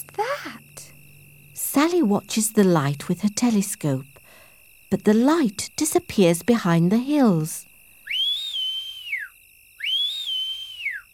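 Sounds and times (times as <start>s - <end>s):
speech: 1.8s - 4.1s, 4.9s - 7.7s
person whistling to signal: 8.0s - 11.1s.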